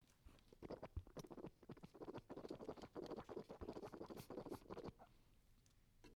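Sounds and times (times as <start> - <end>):
filled bottle of liquid being shaken: 0.6 - 4.9.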